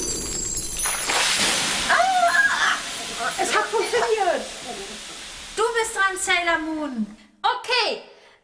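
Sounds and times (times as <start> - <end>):
water jet spraying: 0.8 - 7.0
speech: 6.2 - 8.1.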